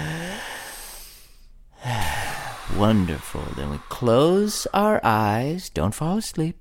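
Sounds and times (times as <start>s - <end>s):
deep breath during a guided relaxation exercise: 0.0s - 4.7s
speech: 2.8s - 6.6s.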